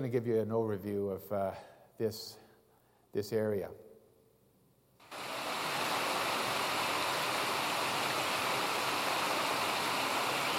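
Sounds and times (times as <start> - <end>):
speech: 0.0 - 2.4, 3.1 - 3.9
stream tumbling over small waterfalls: 5.0 - 10.5.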